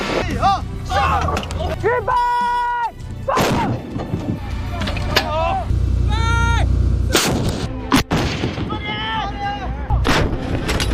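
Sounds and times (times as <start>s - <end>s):
gun crew shouting: 0.2s - 3.8s, 5.1s - 7.2s, 8.7s - 10.0s
artillery gun firing during a training assessment: 7.1s - 8.8s, 10.0s - 10.8s.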